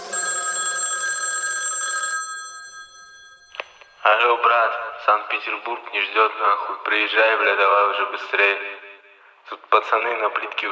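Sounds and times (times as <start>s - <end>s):
telephone bell ringing: 0.0s - 4.3s
speech: 4.0s - 8.8s, 9.5s - 10.7s.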